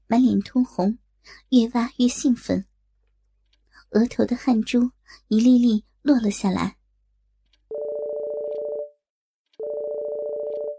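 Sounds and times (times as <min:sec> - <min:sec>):
speech: 0:00.1 - 0:02.7, 0:03.9 - 0:06.8
mobile phone ringing with electronic buzzing tones: 0:07.7 - 0:09.0, 0:09.6 - 0:10.7.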